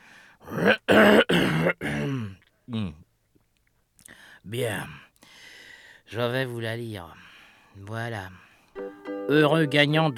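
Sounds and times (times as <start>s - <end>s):
man clearing his throat: 0.5s - 3.0s
speech: 6.1s - 7.2s, 7.8s - 8.4s, 9.3s - 10.1s.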